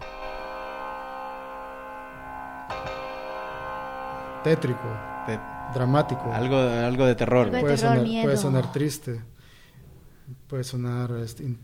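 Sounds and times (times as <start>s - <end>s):
minor chord played on an instrument: 0.0s - 9.0s
speech: 4.4s - 9.3s, 10.3s - 11.6s.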